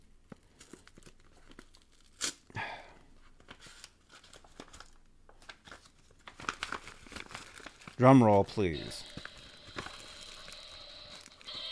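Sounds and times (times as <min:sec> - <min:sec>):
crinkling packaging tearing as a package is ripped open: 0:00.4 - 0:02.5, 0:03.4 - 0:08.0, 0:08.8 - 0:11.6
speech: 0:08.0 - 0:09.1.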